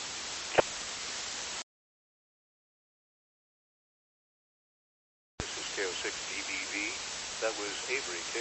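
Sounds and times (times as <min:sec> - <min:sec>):
radio static from a radio caller trying to get through: 0:00.0 - 0:01.6, 0:05.4 - 0:08.3
speech: 0:05.8 - 0:08.3.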